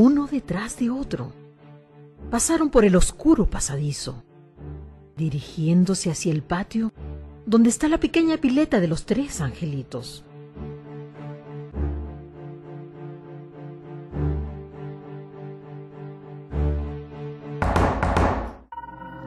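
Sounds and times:
speech: 0.0s - 1.4s, 2.2s - 4.3s, 5.2s - 10.7s
dull knocks on a door in a dark passageway: 17.6s - 18.6s.

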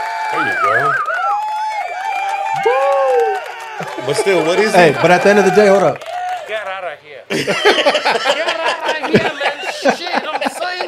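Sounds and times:
crowd applauding a guest: 0.0s - 6.8s
speech: 0.3s - 1.1s, 2.6s - 10.8s
laughter: 3.8s - 5.6s, 7.3s - 10.8s.

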